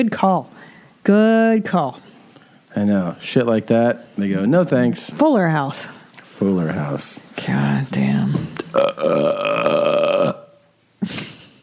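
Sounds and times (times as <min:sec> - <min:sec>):
speech: 0:00.0 - 0:02.1, 0:02.8 - 0:09.7
long loud drawn-out burp: 0:08.7 - 0:10.6.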